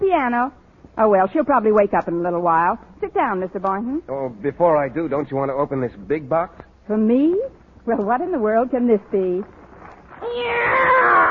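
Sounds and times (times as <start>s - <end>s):
speech: 0.1s - 9.6s, 10.2s - 11.2s
cat meowing with a long wavering whine: 10.2s - 11.2s.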